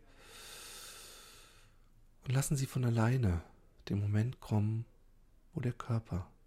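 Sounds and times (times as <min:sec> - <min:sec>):
deep breath through the mouth during a guided breathing exercise: 0:00.0 - 0:01.8
speech: 0:02.3 - 0:04.9, 0:05.5 - 0:06.3.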